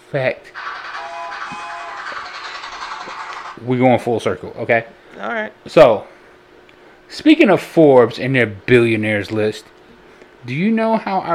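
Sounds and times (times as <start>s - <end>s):
speech: 0.1s - 0.7s, 3.6s - 6.2s, 7.1s - 9.8s, 10.4s - 11.3s
train sound effect with rolling rail noise: 0.6s - 3.6s.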